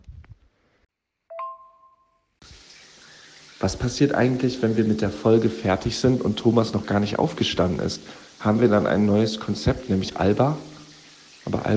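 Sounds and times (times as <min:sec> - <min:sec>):
two-tone electronic chime: 0:01.3 - 0:02.2
steady hissing shower water running: 0:02.4 - 0:11.7
speech: 0:03.6 - 0:10.7, 0:11.5 - 0:11.7.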